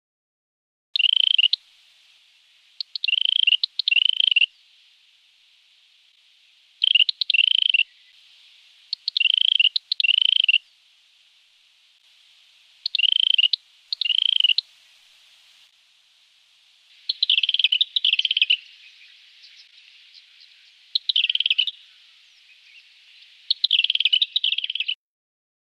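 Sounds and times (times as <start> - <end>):
red-capped robin calling in a Canberra garden: 1.0 - 12.0, 12.7 - 15.7, 16.9 - 25.0.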